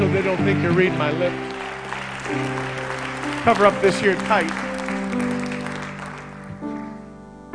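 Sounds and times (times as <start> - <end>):
congregation clapping: 0.0 - 7.0
speech: 0.1 - 1.6, 2.2 - 2.8, 3.4 - 4.6.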